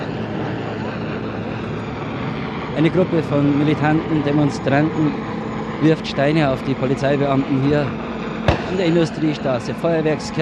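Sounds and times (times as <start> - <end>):
helicopter flying overhead dropping gas grenades on a street protest: 0.0 - 10.4
speech: 2.8 - 8.0, 8.6 - 10.4.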